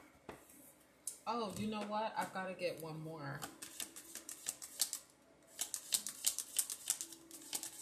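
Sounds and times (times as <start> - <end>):
speech: 1.3 - 3.6
deck of playing cards being shuffled: 3.4 - 7.8.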